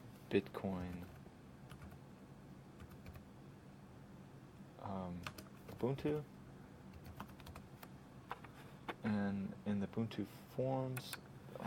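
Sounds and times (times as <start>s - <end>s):
speech: 0.3s - 1.2s, 4.8s - 6.3s, 9.0s - 11.6s
computer keyboard typing a web search term: 0.8s - 2.0s, 2.8s - 3.2s, 5.2s - 6.0s, 6.9s - 7.6s.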